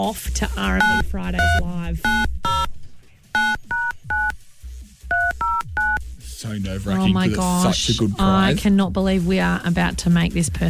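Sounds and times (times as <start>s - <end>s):
speech: 0.0s - 2.4s, 6.5s - 10.6s
touch-tone beeps of a phone number being dialed on a keypad: 0.7s - 2.7s, 3.3s - 4.4s, 5.1s - 6.0s.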